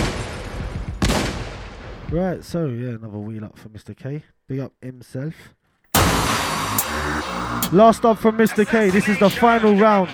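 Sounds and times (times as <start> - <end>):
loud sharp gunshot blast: 0.0 - 1.9
speech: 2.1 - 10.1.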